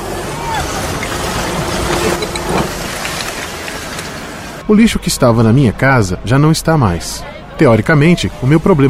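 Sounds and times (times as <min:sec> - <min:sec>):
brief mechanical swell: 0:00.0 - 0:04.7
steady engine rumble: 0:00.0 - 0:04.7
broadband street noise: 0:00.0 - 0:08.8
speech: 0:04.7 - 0:08.8.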